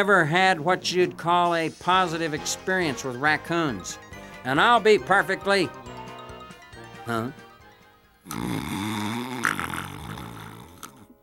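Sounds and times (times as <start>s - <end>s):
speech: 0.0s - 6.0s, 7.1s - 7.4s, 8.2s - 8.9s
person snoring: 8.2s - 11.2s.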